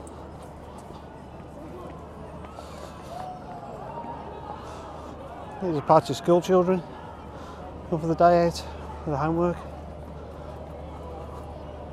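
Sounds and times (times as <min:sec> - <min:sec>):
fairground crowd chatter and movement: 0:00.0 - 0:11.9
speech: 0:05.6 - 0:06.9, 0:07.9 - 0:09.7.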